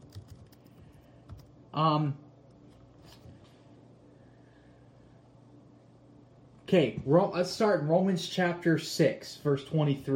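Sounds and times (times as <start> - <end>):
typing on a computer keyboard: 0.0 - 1.5
speech: 1.7 - 2.2, 6.7 - 10.1.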